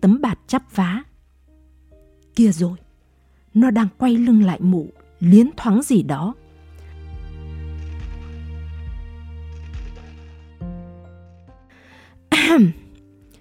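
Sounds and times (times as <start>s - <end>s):
speech: 0.0s - 1.1s, 2.4s - 2.8s, 3.6s - 6.4s, 12.3s - 12.8s
soft steady instrumental music with a repeating low pulse: 0.0s - 13.3s
woman clearing her throat at a market food stall on a rainy day: 12.3s - 12.9s.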